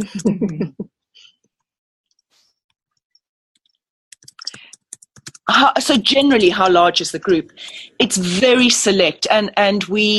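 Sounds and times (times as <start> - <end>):
speech: 0.0 - 0.8, 5.5 - 10.1
fast typing on a computer keyboard: 4.1 - 5.5.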